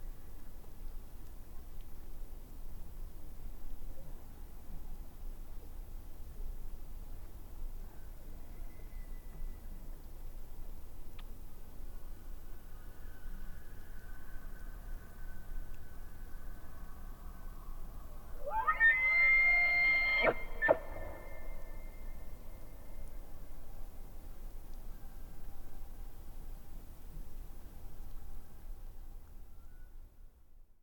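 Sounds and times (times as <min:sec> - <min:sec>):
low background hiss: 0:00.0 - 0:30.8
elk bugling: 0:18.4 - 0:21.8.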